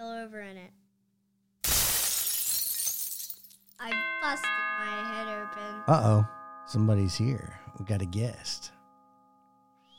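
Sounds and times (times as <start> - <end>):
dropped glass shattering: 1.6 - 3.8
speech: 3.8 - 4.6, 5.9 - 8.8.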